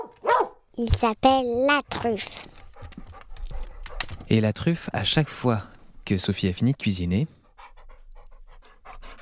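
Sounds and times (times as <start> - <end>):
speech: 0.8 - 2.5, 4.3 - 7.4
dog panting: 1.8 - 5.8, 6.6 - 9.1
dog sniffing a cooked dish: 2.0 - 4.3, 7.3 - 9.1.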